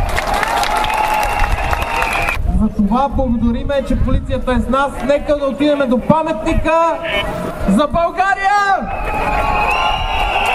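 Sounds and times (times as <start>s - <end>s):
crowd clapping at an outdoor protest gathering on a national holiday: 0.0s - 2.4s, 9.7s - 10.5s
crowd noise at an outdoor protest gathering: 0.0s - 10.5s
speech: 2.8s - 8.5s.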